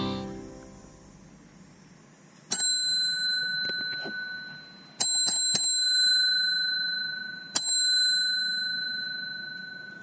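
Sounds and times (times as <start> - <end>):
small hand bell ringing: 2.5 - 10.0.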